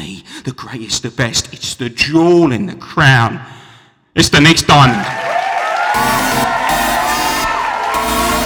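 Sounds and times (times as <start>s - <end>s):
speech: 0.4s - 3.6s, 4.2s - 5.3s
large indoor theatre crowd applauding: 5.0s - 8.4s.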